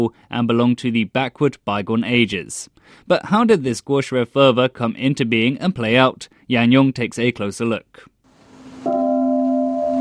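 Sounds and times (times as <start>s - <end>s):
speech: 0.0s - 8.1s
deep bell tolling at a ceremony for Confucius's birthday: 8.9s - 10.0s.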